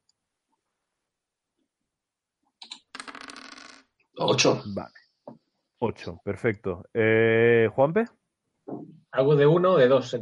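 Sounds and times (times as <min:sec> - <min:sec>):
two ten-sided dice rattling and clattering across a hard surface: 0:02.6 - 0:03.9
speech: 0:04.2 - 0:10.2.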